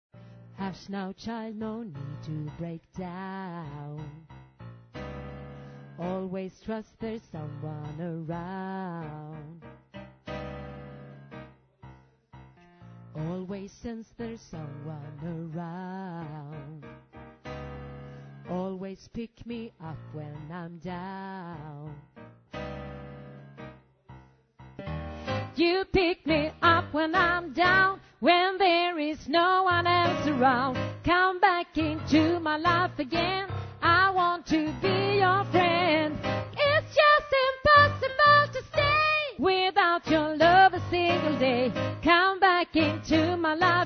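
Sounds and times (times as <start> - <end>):
soprano voice part singing: 0.6 - 4.3, 6.0 - 9.6, 13.2 - 16.9, 18.5 - 22.0, 25.3 - 43.8.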